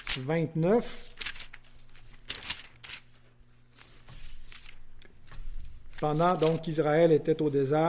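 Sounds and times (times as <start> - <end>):
thin pages of a paper Bible turning: 0.0 - 7.0
speech: 0.2 - 1.2, 6.0 - 7.8.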